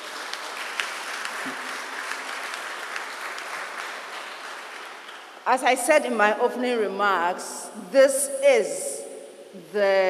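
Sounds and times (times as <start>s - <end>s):
audience clapping: 0.0s - 5.5s
speech: 5.5s - 8.9s, 9.5s - 10.0s.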